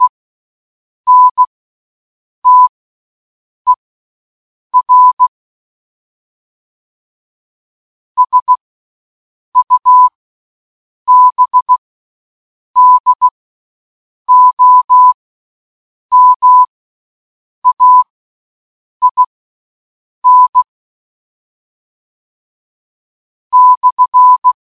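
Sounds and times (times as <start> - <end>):
morse code button: 1.1 - 1.4, 2.5 - 2.7, 4.8 - 5.3, 8.2 - 8.6, 9.6 - 10.1, 11.1 - 11.8, 12.8 - 13.3, 14.3 - 15.2, 16.1 - 16.7, 17.6 - 18.1, 19.0 - 19.3, 20.2 - 20.7, 23.6 - 24.6.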